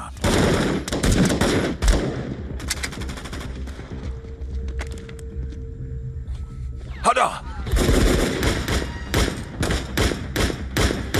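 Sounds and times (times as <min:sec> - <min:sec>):
gunshots: 0:00.2 - 0:03.6, 0:07.7 - 0:11.1
speech: 0:07.2 - 0:07.4.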